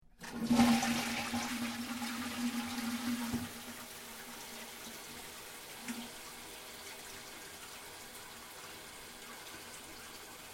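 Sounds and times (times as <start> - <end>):
toilet flushing in Japan: 0.2 - 10.5.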